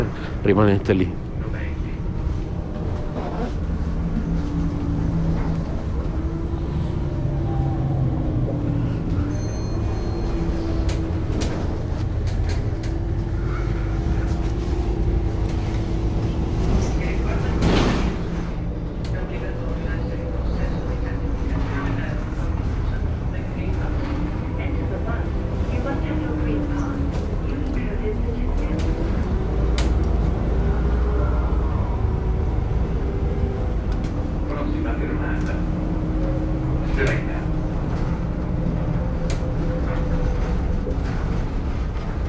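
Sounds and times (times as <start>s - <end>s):
low engine drone inside a moving bus: 0.0s - 42.2s
road rumble inside a moving bus: 0.0s - 42.2s
speech: 0.4s - 1.7s.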